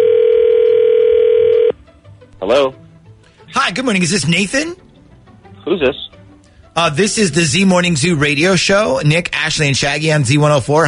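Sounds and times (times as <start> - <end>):
electronic ringback tone of an outgoing call over a telephone line: 0.0 - 1.8
speech: 3.7 - 4.8, 5.7 - 6.0, 6.8 - 10.8.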